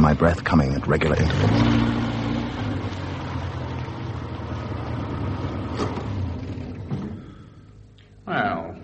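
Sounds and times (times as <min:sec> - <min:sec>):
car engine idling in a closed garage beside a house: 0:00.0 - 0:08.0
speech: 0:00.1 - 0:02.1.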